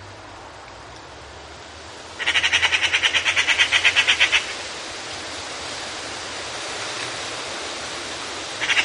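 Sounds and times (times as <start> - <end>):
Eurasian magpie grating chatter: 2.2 - 4.6, 8.6 - 8.8.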